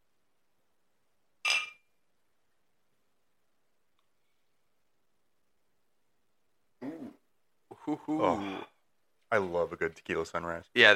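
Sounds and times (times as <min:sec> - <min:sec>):
drink glasses clinking in a toast: 0:01.4 - 0:01.9
person clearing throat: 0:06.8 - 0:08.8
speech: 0:07.9 - 0:08.7, 0:09.3 - 0:10.9.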